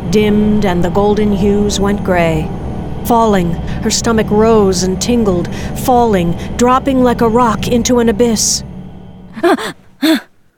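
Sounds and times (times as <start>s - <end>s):
speech: 0.1s - 8.7s, 9.4s - 10.3s
woman gasping in cold air as she jolts awake: 9.4s - 10.3s.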